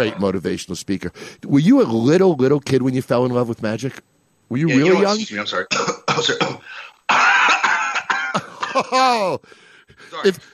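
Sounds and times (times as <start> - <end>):
speech: 0.0 - 7.7, 8.4 - 10.5
man coughing and clearing his throat: 5.7 - 9.3.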